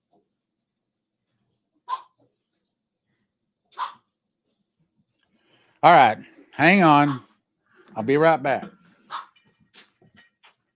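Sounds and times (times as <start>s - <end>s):
agitated dogs barking: 3.8s - 4.0s
speech: 5.8s - 7.3s, 8.0s - 8.8s.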